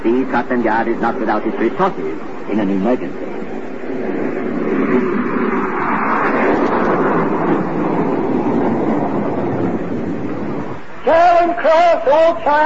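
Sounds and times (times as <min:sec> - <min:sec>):
train rumbling as it pulls out of a station: 0:00.0 - 0:12.3
speech: 0:00.1 - 0:03.4, 0:11.1 - 0:12.6.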